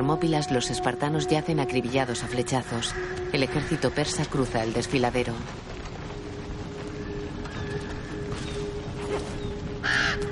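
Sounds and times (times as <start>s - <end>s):
speech: 0.0s - 5.7s
steady low droning background: 0.0s - 10.3s
crow cawing: 2.7s - 4.2s, 9.8s - 10.3s.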